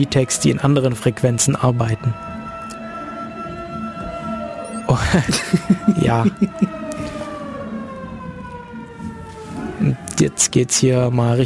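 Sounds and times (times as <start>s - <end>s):
speech: 0.0s - 2.3s, 5.0s - 7.2s, 9.8s - 11.4s
siren wailing outdoors during a parade: 2.2s - 10.1s
laughter: 4.9s - 6.8s.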